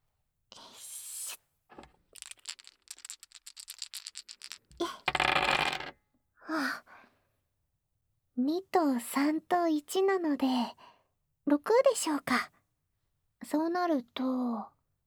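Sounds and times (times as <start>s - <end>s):
several dice rattling across a hard surface: 1.7s - 5.9s
speech: 8.4s - 10.8s, 11.5s - 12.6s, 13.5s - 14.7s.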